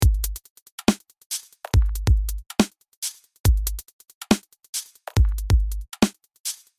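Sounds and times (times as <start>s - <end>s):
dubstep drums: 0.0s - 0.4s, 1.8s - 2.5s, 5.2s - 5.9s.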